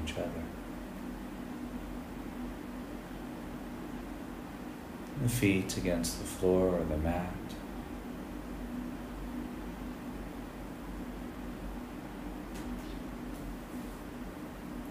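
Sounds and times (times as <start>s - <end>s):
air conditioning hum: 0.0s - 14.9s
speech: 0.1s - 0.5s, 5.2s - 7.6s.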